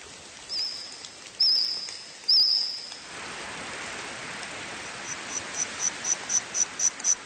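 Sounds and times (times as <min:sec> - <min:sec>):
steady hiss: 0:00.0 - 0:07.2
insects chirping and trilling in a forest: 0:00.5 - 0:03.0, 0:05.0 - 0:07.2.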